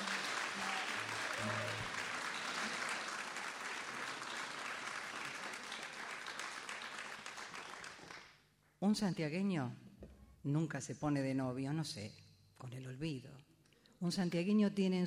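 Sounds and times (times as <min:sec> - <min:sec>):
loud sustained applause from a large audience: 0:00.0 - 0:08.2
speech: 0:08.8 - 0:09.8, 0:10.4 - 0:15.0.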